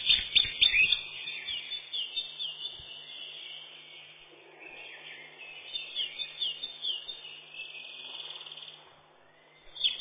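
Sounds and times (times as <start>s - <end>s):
Eurasian wren Troglodytes troglodytes singing sharp high notes and twittering trills: 0.0s - 8.8s, 9.6s - 10.0s.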